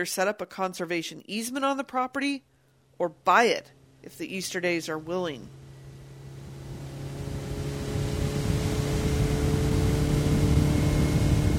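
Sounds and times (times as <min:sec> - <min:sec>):
speech: 0:00.0 - 0:05.6
boat motor droning on a lake: 0:02.9 - 0:11.5.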